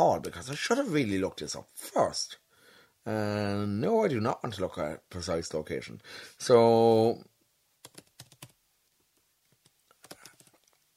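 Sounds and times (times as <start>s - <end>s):
speech: 0.0s - 2.4s, 3.0s - 7.3s
typing on a computer keyboard: 7.8s - 8.6s, 9.5s - 10.8s.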